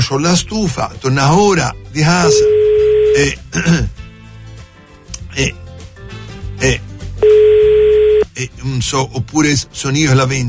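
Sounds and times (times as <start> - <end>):
speech: 0.1 - 4.0, 5.4 - 5.6, 6.6 - 7.7, 8.4 - 10.4
telephone ringback tone on a call: 2.2 - 3.2, 7.2 - 8.2
throat clearing: 3.6 - 4.0.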